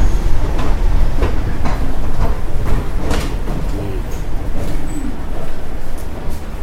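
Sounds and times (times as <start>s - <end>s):
bus terminal engines rumbling: 0.0s - 6.6s
faint indistinct voices murmuring: 2.6s - 6.4s
crowd noise at a bus terminal: 3.4s - 6.3s.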